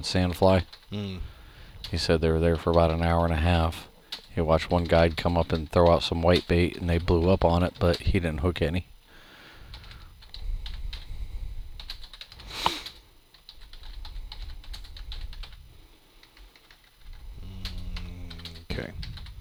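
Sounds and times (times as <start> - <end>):
speech: 0.0 - 8.9
typing on a sticking computer keyboard: 0.5 - 0.9, 4.1 - 8.2, 9.6 - 11.1, 11.7 - 15.6, 16.2 - 19.3.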